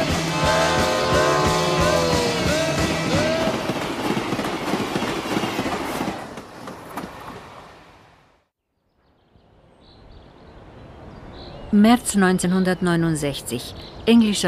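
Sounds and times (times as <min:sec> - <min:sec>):
train rumbling on rails: 0:00.0 - 0:08.1
speech: 0:11.8 - 0:14.4.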